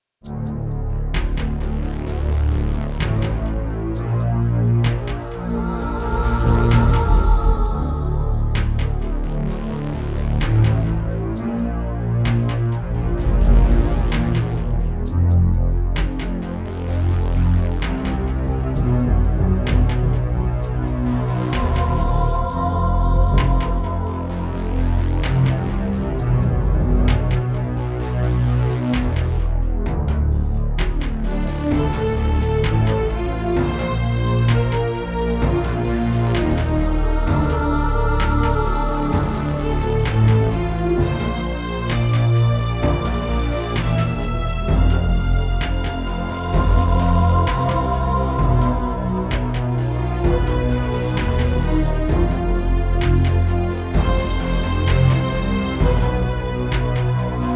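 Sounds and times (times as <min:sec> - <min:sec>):
Yamaha QY70 synthesizer music: 0:00.2 - 0:28.0, 0:28.8 - 0:57.5.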